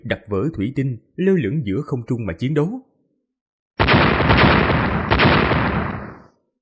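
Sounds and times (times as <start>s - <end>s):
speech: 0.0s - 2.9s
loud explosion sound effect for a blast on a skyscraper: 3.8s - 6.3s.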